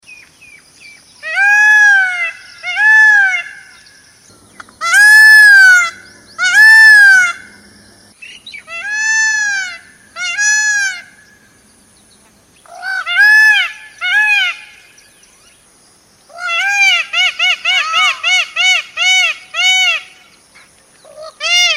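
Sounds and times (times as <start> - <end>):
peacock calling: 1.2 - 11.6, 12.6 - 15.5, 16.3 - 20.3.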